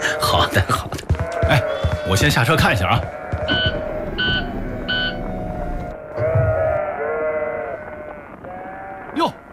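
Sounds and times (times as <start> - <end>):
steady noise: 0.0 - 9.5
speech: 0.3 - 3.6
injured straggler lamb bleating: 1.2 - 2.2, 3.1 - 3.8, 5.9 - 9.4.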